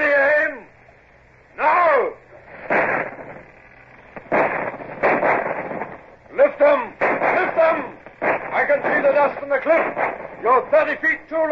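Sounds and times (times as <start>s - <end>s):
low rumble: 0.0s - 11.5s
ship's starboard cannons firing a broadside at a shore battery: 2.6s - 3.4s, 4.2s - 11.3s.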